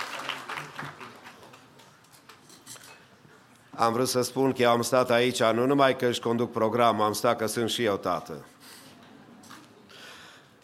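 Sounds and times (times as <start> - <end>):
crowd applauding: 0.0 - 1.8
speech: 3.8 - 8.5.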